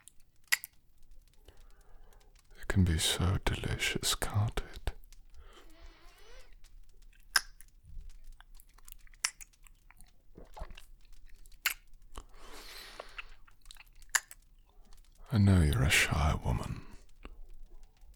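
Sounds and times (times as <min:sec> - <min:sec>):
wet chewing of fruit: 0:00.0 - 0:18.1
speech: 0:02.7 - 0:04.8, 0:15.9 - 0:16.9
crisp biting and crunching into fruit: 0:07.2 - 0:07.7, 0:08.5 - 0:14.5.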